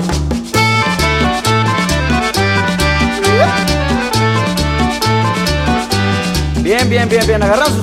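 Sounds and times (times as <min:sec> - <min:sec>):
regular percussive beat in lively dance music: 0:00.0 - 0:06.8
bouncing bass in lively dance music: 0:00.2 - 0:06.7
accordion playing bright melody in lively dance music: 0:00.6 - 0:06.8
speech: 0:06.8 - 0:07.8.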